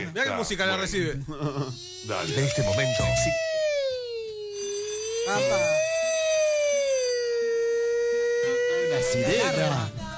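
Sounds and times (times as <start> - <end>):
speech: 0.2 - 3.5, 5.3 - 5.9, 8.9 - 10.0
loud sustained siren-like alarm wailing: 1.8 - 10.0.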